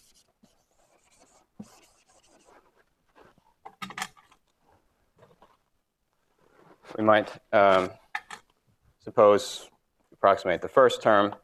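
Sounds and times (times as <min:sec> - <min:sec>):
marker or chalk strokes on a board sketching curves: 0:00.0 - 0:02.8
speech: 0:07.0 - 0:08.0, 0:09.1 - 0:11.4.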